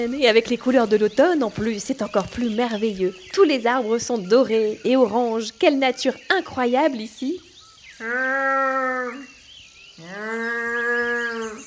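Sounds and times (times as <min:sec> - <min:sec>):
speech: 0:00.0 - 0:09.3, 0:10.0 - 0:11.6
distressed moaning calls from an animal: 0:08.0 - 0:09.4, 0:10.0 - 0:11.6.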